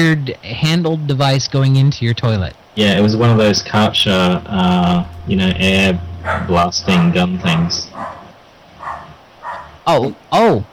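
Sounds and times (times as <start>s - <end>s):
speech: 0.0s - 8.2s, 9.9s - 10.7s
dog barking at something it hears: 8.0s - 9.8s.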